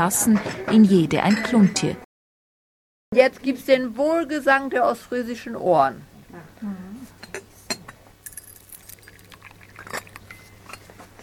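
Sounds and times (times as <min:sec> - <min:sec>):
speech: 0:00.0 - 0:02.0, 0:03.1 - 0:06.8
bright clinks of porcelain: 0:07.7 - 0:10.8
hot tea poured onto rock candy: 0:08.3 - 0:10.4.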